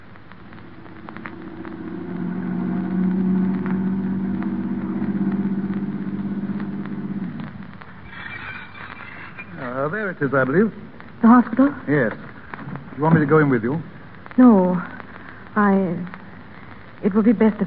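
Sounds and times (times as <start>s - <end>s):
car engine idling: 0.0s - 7.8s
speech: 10.2s - 12.3s, 13.0s - 14.9s, 15.6s - 16.2s, 17.0s - 17.6s.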